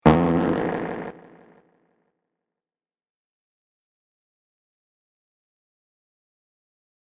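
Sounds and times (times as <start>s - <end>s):
fart: 0.0s - 1.7s.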